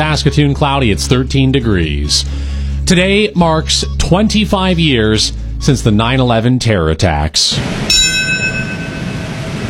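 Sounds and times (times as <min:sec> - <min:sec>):
speech: 0:00.0 - 0:08.3
memorial bell struck at a ceremony in the U.S.: 0:07.9 - 0:09.5.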